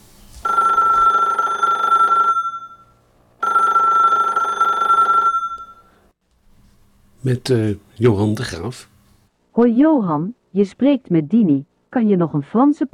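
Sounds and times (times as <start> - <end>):
telephone bell ringing with an electronic trill: 0.4 - 6.1
speech: 7.2 - 8.9, 9.6 - 12.9.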